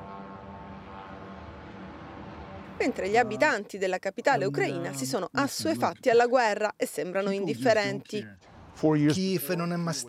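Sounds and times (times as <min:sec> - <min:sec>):
Russian kamikaze drone engine flying overhead in Kyiv: 0:00.0 - 0:03.3
speech: 0:02.8 - 0:10.0.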